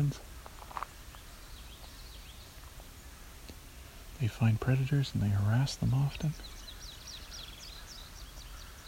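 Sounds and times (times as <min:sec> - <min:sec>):
constant hiss: 0:00.0 - 0:08.8
indigo bunting singing: 0:00.0 - 0:08.8
speech: 0:04.2 - 0:06.6.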